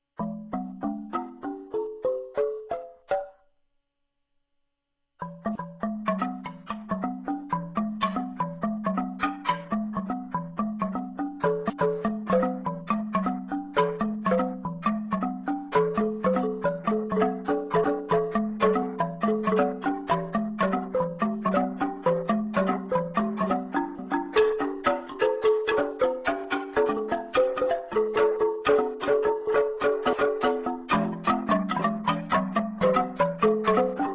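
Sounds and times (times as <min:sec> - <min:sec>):
amadinda xylophone playing: 0:00.0 - 0:03.4, 0:05.2 - 0:34.1.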